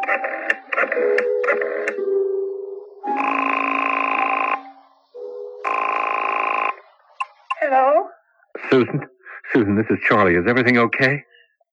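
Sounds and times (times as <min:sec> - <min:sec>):
phone number dialing tones: 0:00.0 - 0:06.8
telephone ringing on the line: 0:00.0 - 0:06.9
speech: 0:08.7 - 0:11.3.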